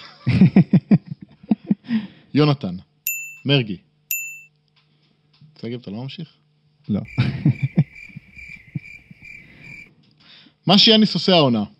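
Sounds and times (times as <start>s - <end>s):
laughter: 0.0s - 1.9s, 7.1s - 9.2s
speech: 2.4s - 3.9s, 5.6s - 7.7s, 10.7s - 11.7s
cricket chirping: 7.0s - 9.9s.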